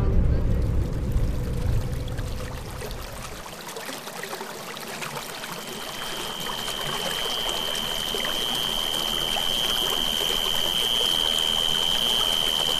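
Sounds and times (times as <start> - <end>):
river water flowing in Amazon forest: 0.2 - 12.7
thin high sustained insect-like tone: 5.6 - 12.7.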